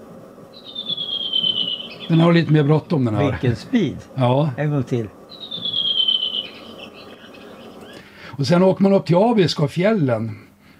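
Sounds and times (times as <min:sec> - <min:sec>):
low rumbling hum: 0:00.0 - 0:08.2
redwing singing faster song variant: 0:00.5 - 0:02.4, 0:05.3 - 0:08.0
speech: 0:02.1 - 0:05.2, 0:08.4 - 0:10.5.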